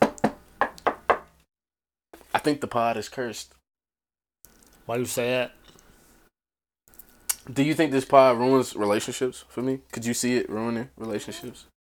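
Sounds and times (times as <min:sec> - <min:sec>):
sharp knocks on wood: 0:00.0 - 0:01.3
speech: 0:02.4 - 0:03.6, 0:04.9 - 0:05.6, 0:07.5 - 0:11.7.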